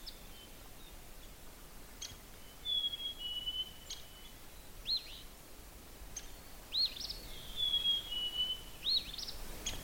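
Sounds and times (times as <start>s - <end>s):
Black-capped Chickadee two-noted whistled song outdoors on a cold morning: 2.6s - 4.3s, 6.8s - 9.3s.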